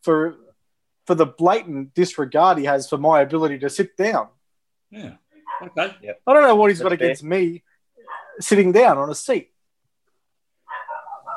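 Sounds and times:
speech: 0.0s - 0.4s, 1.1s - 9.5s
agitated dog barking: 5.4s - 5.8s, 8.0s - 8.4s, 10.6s - 11.3s.

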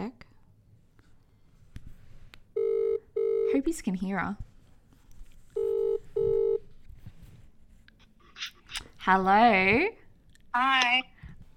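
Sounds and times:
telephone ringing tone: 2.6s - 3.5s, 5.6s - 6.6s
speech: 3.6s - 4.5s, 9.1s - 10.0s, 10.6s - 11.1s.

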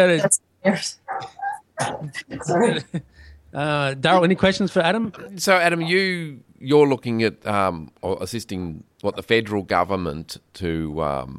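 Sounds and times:
speech: 0.0s - 11.3s
dogs barking: 1.0s - 1.9s
thin high dog whimper: 1.0s - 2.7s.

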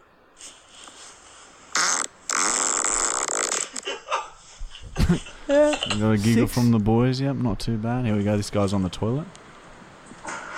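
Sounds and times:
fart: 1.7s - 3.8s
speech: 5.1s - 9.4s.

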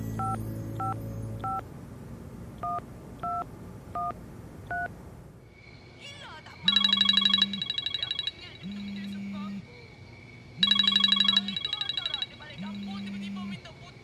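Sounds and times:
faint low hum: 0.2s - 14.0s
phone keypad tones while dialing: 6.7s - 9.2s, 10.6s - 13.0s.

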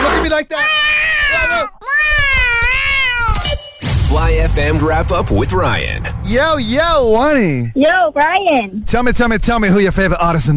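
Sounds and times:
speech: 0.4s - 0.8s, 4.2s - 10.5s
cat meowing and yowling: 0.5s - 3.6s
faint low thumps: 4.1s - 7.8s.

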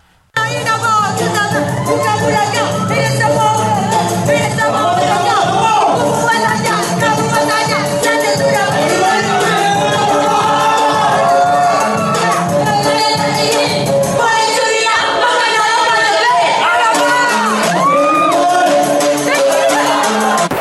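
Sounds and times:
bride rapping live on stage at her wedding reception: 0.4s - 9.5s, 12.6s - 17.5s
wedding crowd cheering and clamoring: 8.9s - 12.7s, 15.1s - 20.5s.

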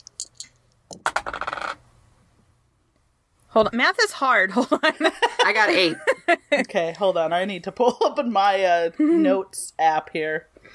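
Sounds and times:
dice clattering and tumbling across a hard tabletop: 0.1s - 1.8s
speech: 3.6s - 10.7s.

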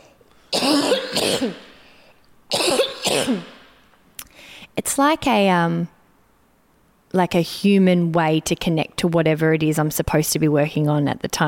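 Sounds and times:
person coughing in quick double hacks: 0.0s - 1.8s, 2.5s - 3.8s
speech: 1.1s - 1.7s, 3.2s - 3.5s, 5.0s - 6.0s, 7.1s - 11.4s.

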